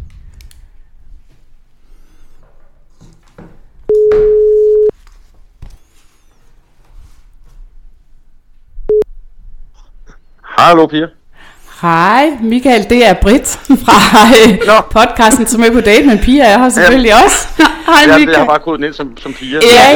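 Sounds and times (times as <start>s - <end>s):
phone ringback tone while a call connects: 3.9s - 4.9s
speech: 10.6s - 11.2s, 11.8s - 19.9s
laughter: 13.6s - 19.9s.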